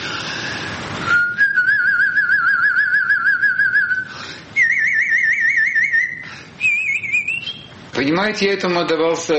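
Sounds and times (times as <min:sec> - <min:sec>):
brief breaths: 0:00.0 - 0:00.9, 0:04.0 - 0:04.6, 0:06.2 - 0:06.6
person whistling a trill: 0:00.6 - 0:07.7
speech: 0:08.1 - 0:09.3.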